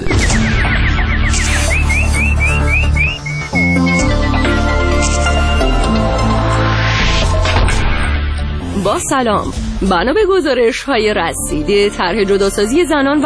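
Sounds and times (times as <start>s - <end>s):
nightingale-like bird warbling: 0.8s - 4.7s
loud dense music with sustained tones: 1.6s - 13.2s
speech: 9.0s - 13.2s.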